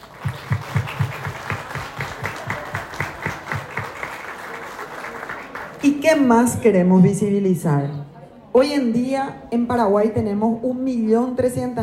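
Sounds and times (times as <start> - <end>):
audience applauding in a rhythmic beat: 0.0 - 5.9
speech: 5.9 - 8.0, 8.6 - 11.8.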